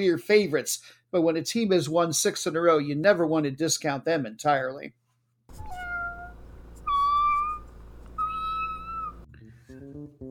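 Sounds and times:
speech: 0.0s - 5.8s
cats meowing: 5.5s - 9.3s.

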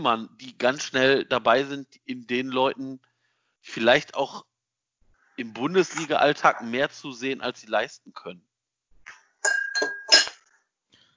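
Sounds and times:
speech: 0.0s - 4.5s, 5.4s - 8.5s
glass breaking with a sharp shattering crash: 9.4s - 10.4s
glass shards clinking as they scatter: 9.4s - 10.4s.

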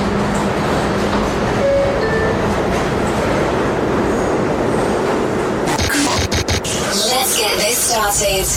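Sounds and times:
subway train wheels and motor rumbling: 0.0s - 8.5s.

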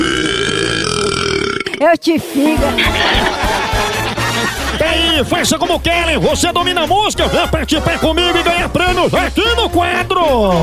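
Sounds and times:
long loud burp after eating: 0.0s - 1.9s
speech: 1.8s - 10.6s
laughter: 2.4s - 6.1s.

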